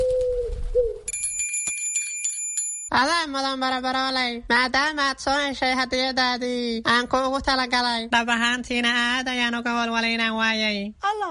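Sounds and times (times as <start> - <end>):
small bell tied to a leg ringing: 1.1 - 2.9
speech: 2.9 - 11.2.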